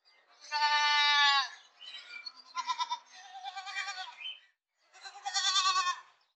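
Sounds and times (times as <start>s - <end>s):
goat sounds: 0.4s - 1.6s, 2.4s - 4.3s, 4.9s - 6.1s.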